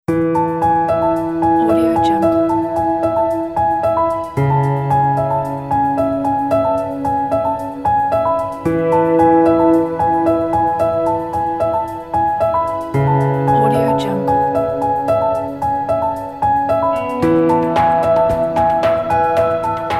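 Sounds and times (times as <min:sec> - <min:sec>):
sweet ambient corporate music: 0:00.2 - 0:19.9.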